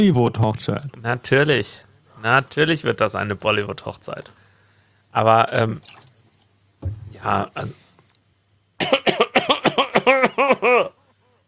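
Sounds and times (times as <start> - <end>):
speech: 0.0 - 4.4, 5.1 - 6.0, 6.8 - 7.8, 10.5 - 11.0
person coughing: 8.8 - 11.0.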